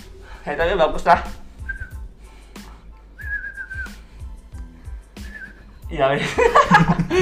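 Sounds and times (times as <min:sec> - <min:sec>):
speech: 0:00.4 - 0:01.4, 0:05.9 - 0:07.1
person whistling short steady tones: 0:01.5 - 0:02.1, 0:03.1 - 0:04.3, 0:05.2 - 0:05.8
laughter: 0:06.2 - 0:07.1.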